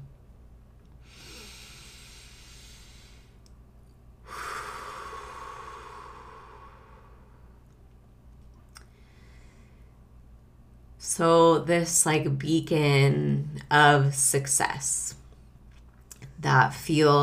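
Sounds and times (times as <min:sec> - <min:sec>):
person taking a deep slow breath: 0:01.0 - 0:03.4, 0:04.2 - 0:07.6, 0:08.9 - 0:09.9
speech: 0:11.1 - 0:15.2, 0:16.4 - 0:17.2.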